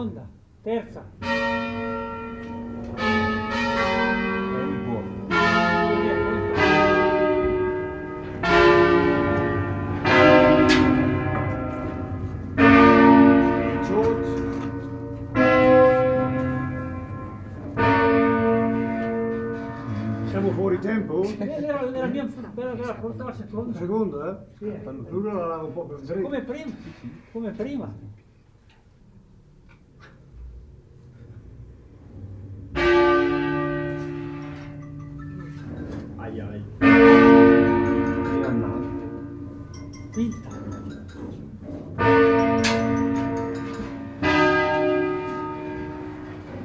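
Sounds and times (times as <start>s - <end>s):
speech: 0.0s - 2.0s, 21.2s - 28.2s
church bell ringing: 1.2s - 22.5s, 32.5s - 46.6s.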